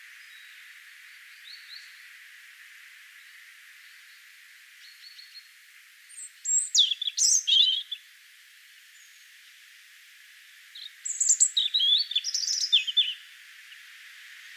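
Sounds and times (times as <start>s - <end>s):
European robin singing: 6.1s - 8.0s, 10.8s - 13.2s.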